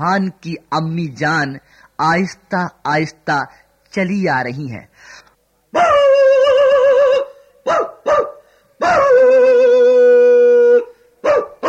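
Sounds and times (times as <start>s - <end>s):
speech: 0.0s - 5.9s
dogs howling at night: 5.8s - 11.6s
dogs barking and yipping at night: 7.2s - 9.3s, 11.2s - 11.6s.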